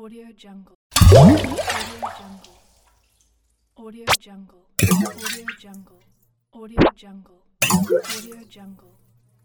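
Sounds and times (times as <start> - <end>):
plopping: 0.9 - 2.5, 4.8 - 5.8, 7.7 - 8.5
splash: 0.9 - 2.6, 4.8 - 5.8, 7.7 - 8.5.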